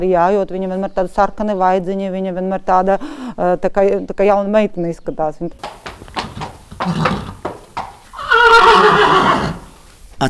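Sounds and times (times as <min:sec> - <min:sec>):
speech: 0:00.0 - 0:06.1, 0:06.8 - 0:07.3
sharp clip-clop hoof knocks: 0:05.5 - 0:10.1
horse whinnying loudly: 0:05.6 - 0:09.9.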